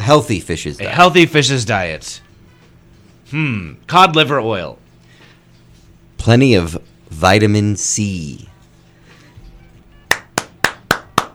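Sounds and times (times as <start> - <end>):
speech: 0.0 - 2.2, 3.3 - 4.8, 6.2 - 8.5
sharp hand claps: 10.1 - 11.3.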